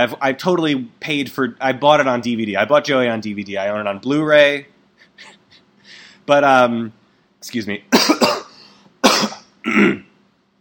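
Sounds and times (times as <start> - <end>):
speech: 0.0 - 5.4, 6.3 - 8.4, 9.2 - 10.0
wet phlegmy cough clearing mucus: 7.9 - 10.1.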